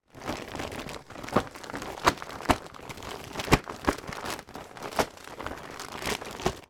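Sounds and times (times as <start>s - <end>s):
household pushchair plastic rain cover stretching and moving: 0.0s - 6.6s.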